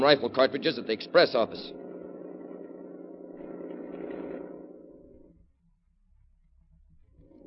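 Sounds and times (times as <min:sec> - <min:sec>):
speech: 0:00.0 - 0:01.8
new car engine running: 0:00.0 - 0:05.4.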